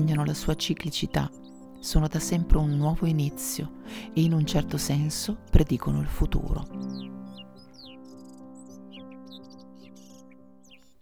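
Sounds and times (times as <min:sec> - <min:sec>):
barn swallow Hirundo rustica chirping and twittering: 0:00.0 - 0:03.0, 0:06.4 - 0:10.9
speech: 0:00.0 - 0:07.4.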